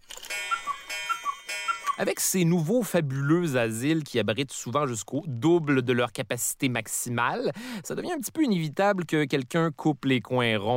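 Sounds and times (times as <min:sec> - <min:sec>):
cuckoo clock calling: 0:00.1 - 0:02.7
speech: 0:02.0 - 0:10.7.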